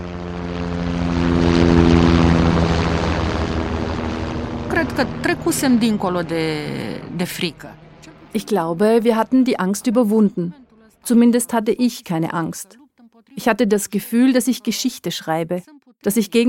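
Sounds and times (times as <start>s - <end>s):
approaching helicopter rotor drone: 0.0s - 10.5s
speech: 4.8s - 16.4s.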